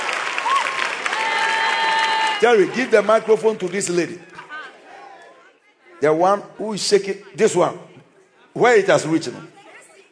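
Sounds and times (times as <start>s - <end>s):
crowd whooping: 0.0s - 2.8s
large audience clapping: 0.0s - 4.2s
speech: 2.4s - 4.3s, 6.0s - 9.6s.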